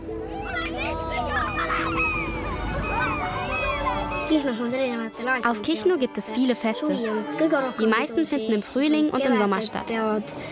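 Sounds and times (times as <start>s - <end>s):
seagulls crying while circling over a beach: 0.0s - 6.1s
speech: 4.3s - 10.4s.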